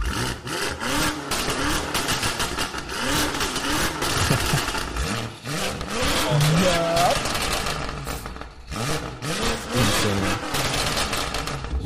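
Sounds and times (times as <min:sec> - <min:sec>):
850-horsepower car engine revving at high rpm outdoors: 0:00.0 - 0:11.8
laughter: 0:04.0 - 0:04.9.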